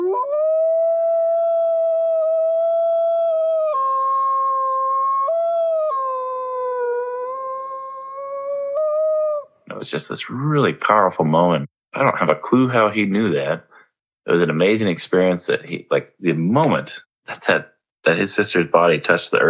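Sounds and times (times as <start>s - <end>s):
dog howling mournfully: 0.0s - 9.6s
speech: 9.8s - 13.7s, 14.3s - 19.4s.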